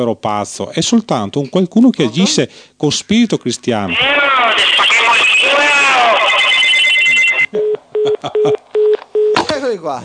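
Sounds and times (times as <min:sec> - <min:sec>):
speech: 0:00.0 - 0:06.6, 0:08.2 - 0:08.6, 0:09.6 - 0:10.0
telephone ringing: 0:04.0 - 0:09.3
short electronic telephone beeps with faint clicks: 0:04.6 - 0:07.8.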